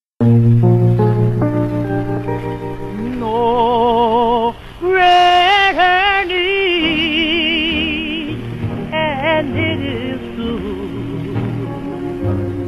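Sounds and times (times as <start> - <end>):
steady accompaniment of 1950s R&B doo-wop song: 0.2 - 4.5, 5.2 - 12.6
lead singer's wavering vibrato-laden melody in 1950s R&B doo-wop song: 2.9 - 12.6
harmonizing backing voices of doo-wop vocal group: 3.0 - 12.6.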